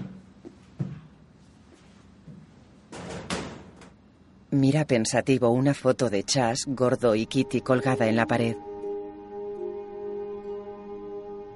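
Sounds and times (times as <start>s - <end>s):
quiet knocks and shuffling at a gun cabinet: 0.0s - 2.9s
speech: 4.5s - 8.7s.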